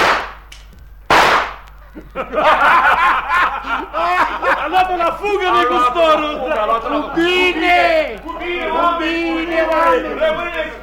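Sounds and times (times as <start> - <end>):
rifle shot: 0.0 - 0.5, 1.1 - 1.7
excited voices: 1.7 - 10.8
laughter: 1.7 - 10.8
speech: 2.0 - 10.8.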